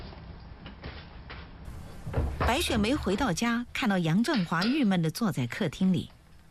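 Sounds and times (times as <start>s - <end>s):
knocks and shuffles of a swinging door: 1.7s - 3.2s
speech: 2.5s - 6.2s.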